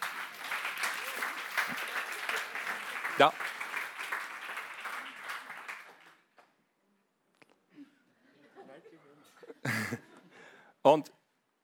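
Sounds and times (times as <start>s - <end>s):
audience applause: 0.0s - 6.3s
speech: 3.2s - 3.5s, 10.8s - 11.2s.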